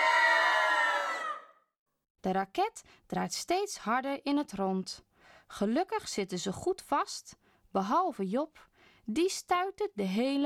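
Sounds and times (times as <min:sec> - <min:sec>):
children screaming in fright: 0:00.0 - 0:01.6
speech: 0:02.2 - 0:10.4.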